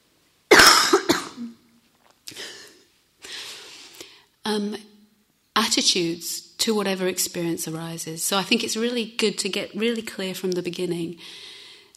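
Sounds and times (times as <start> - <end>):
person coughing: 0.5 - 1.6
speech: 4.5 - 4.9, 5.6 - 11.6.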